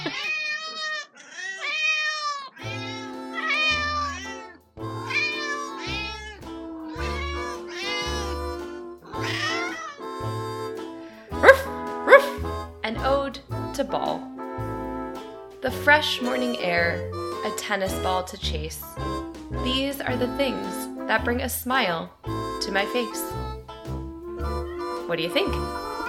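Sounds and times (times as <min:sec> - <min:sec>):
cat meowing: 0:00.0 - 0:08.5, 0:09.1 - 0:10.1, 0:24.6 - 0:25.0, 0:25.8 - 0:26.0
low rhythmic thumping: 0:03.0 - 0:21.5, 0:22.2 - 0:26.0
speech: 0:13.8 - 0:14.3, 0:15.6 - 0:23.4, 0:25.1 - 0:25.8.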